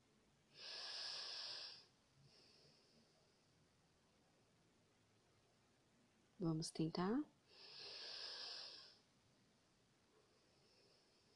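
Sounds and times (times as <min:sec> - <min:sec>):
deep inhale through the nose: 0:00.5 - 0:03.1, 0:07.5 - 0:09.0
speech: 0:06.4 - 0:07.6.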